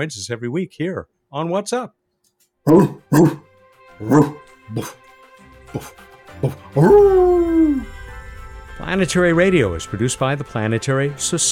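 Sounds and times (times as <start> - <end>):
speech: 0.0 - 2.0, 2.6 - 5.1, 5.7 - 7.9, 8.8 - 11.4
dog barking: 2.7 - 3.4, 4.0 - 5.0, 5.8 - 7.2
dog whining yowl sliding down in pitch: 2.7 - 3.4, 4.0 - 5.0, 5.8 - 7.9.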